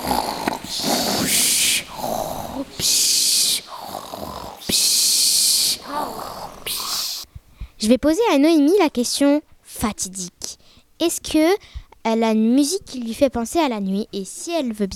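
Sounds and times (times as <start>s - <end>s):
loud snoring: 0.0s - 2.6s, 3.7s - 4.7s
speech: 7.9s - 10.4s, 11.0s - 14.9s.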